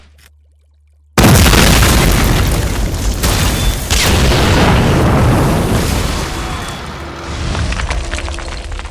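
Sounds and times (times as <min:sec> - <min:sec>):
blasting charges exploding: 0:01.2 - 0:08.1.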